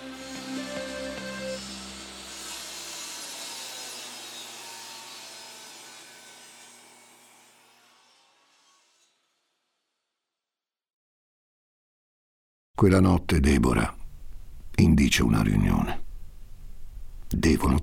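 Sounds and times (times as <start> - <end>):
electric power saw running: 0.0 - 8.0
speech: 12.8 - 14.0, 14.8 - 16.0, 17.3 - 17.8.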